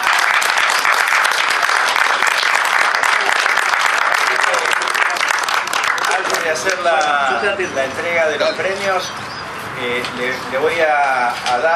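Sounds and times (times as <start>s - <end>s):
large audience applauding: 0.0s - 7.2s
speech: 6.6s - 9.2s, 9.8s - 11.7s.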